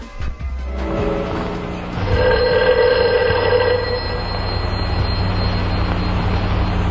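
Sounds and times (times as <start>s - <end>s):
low droning hum: 0.2s - 6.8s
telephone bell ringing: 2.0s - 5.8s.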